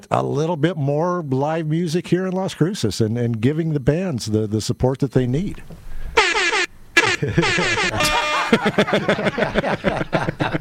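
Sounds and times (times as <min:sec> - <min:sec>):
speech: 0:00.0 - 0:05.9, 0:07.2 - 0:10.6
loud blaring air horn blasts: 0:06.2 - 0:08.7
laughter: 0:07.0 - 0:10.6.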